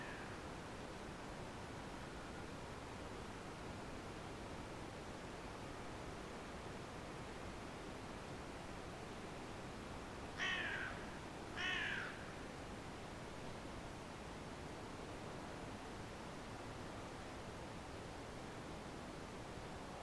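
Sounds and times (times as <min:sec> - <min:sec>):
steady background hiss: 0:00.0 - 0:20.0
carrion crow Corvus corone cawing: 0:10.4 - 0:12.3.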